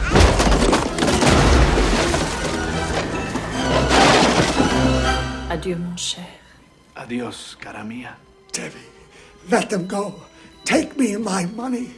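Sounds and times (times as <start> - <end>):
cannonball crashing through wooden floorboards onto a boiling pot in a cellar: 0.1 - 5.1
speech: 5.7 - 6.4, 7.0 - 11.9.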